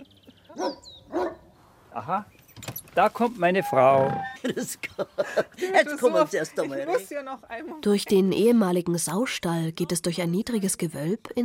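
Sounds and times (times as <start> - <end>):
speech: 0.6 - 1.0, 2.0 - 2.4, 3.0 - 11.4
dog barking: 0.6 - 1.5
laughter: 4.1 - 7.2.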